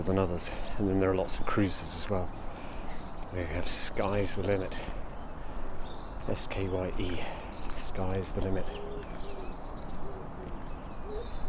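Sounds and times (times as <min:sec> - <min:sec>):
speech: 0:00.0 - 0:02.4, 0:03.3 - 0:05.0, 0:06.3 - 0:08.9
faint higher bird chirps: 0:00.0 - 0:11.4
dove or pigeon cooing: 0:08.6 - 0:11.4.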